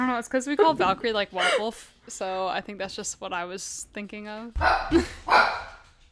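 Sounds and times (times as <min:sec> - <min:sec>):
speech: 0:00.0 - 0:05.6
dog barking: 0:04.6 - 0:05.8.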